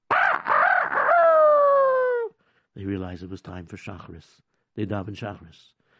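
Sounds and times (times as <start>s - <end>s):
rooster crowing: 0.1s - 2.3s
speech: 2.8s - 5.8s.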